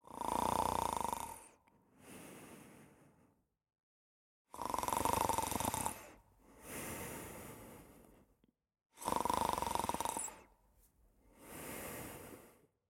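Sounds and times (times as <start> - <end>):
woman snoring: 0.0 - 1.6, 4.5 - 6.2, 9.0 - 10.5.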